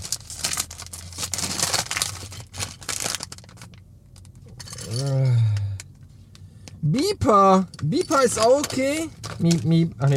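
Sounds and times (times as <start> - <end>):
plastic bag tearing: 0.0 - 3.7
crinkly plastic bag being pulled and crumpled: 0.0 - 4.3, 8.0 - 10.1
speech: 6.9 - 10.1.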